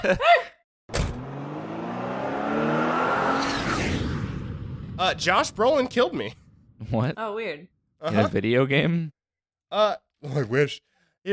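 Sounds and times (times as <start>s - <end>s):
speech: 0.0s - 0.4s, 5.0s - 11.3s
car door slamming: 0.9s - 1.4s
car engine starting to drive and accelerating: 0.9s - 6.4s.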